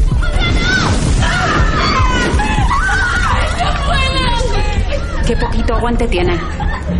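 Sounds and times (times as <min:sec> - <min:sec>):
frightened maids screaming: 0:00.2 - 0:05.6
laughter: 0:01.4 - 0:06.9
speech: 0:05.8 - 0:06.7.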